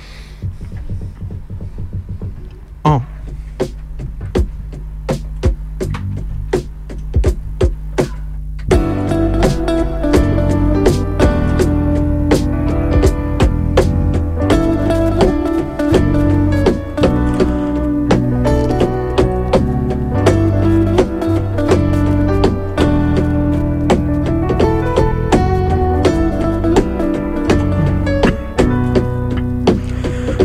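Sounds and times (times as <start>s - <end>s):
drum hits: 0.3s - 30.4s
speech: 2.9s - 3.8s
live band performing a rock song: 8.7s - 30.4s.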